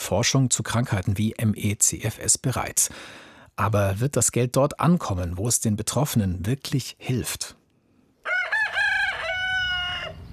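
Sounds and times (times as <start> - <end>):
speech: 0.1 - 7.6
rooster crowing: 8.2 - 10.3.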